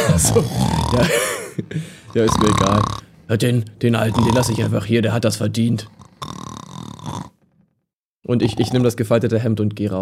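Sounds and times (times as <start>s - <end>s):
laughter: 0.0s - 1.8s
human voice imitating a snore: 0.0s - 7.6s, 8.3s - 9.0s
speech: 0.2s - 6.4s, 8.3s - 9.9s.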